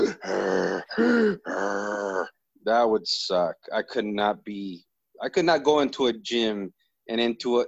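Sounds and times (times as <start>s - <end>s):
voice imitating heavy strained grunting breaths: 0.0s - 2.4s
speech: 2.7s - 7.6s.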